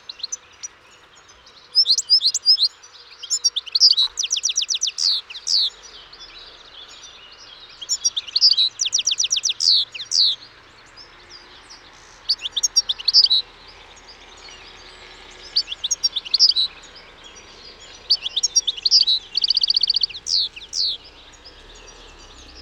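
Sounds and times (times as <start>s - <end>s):
European goldfinch Carduelis carduelis calling: 1.6s - 22.6s.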